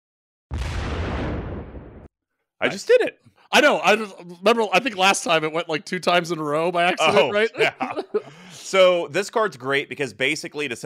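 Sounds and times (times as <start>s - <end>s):
loud explosion with deep rumbling roar: 0.5s - 2.1s
speech: 2.6s - 10.8s
laughter: 3.6s - 9.2s.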